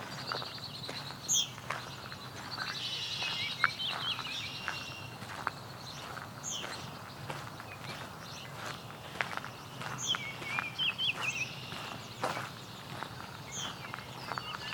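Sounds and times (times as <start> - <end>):
blackbird giving brief high calls: 0.0 - 14.7.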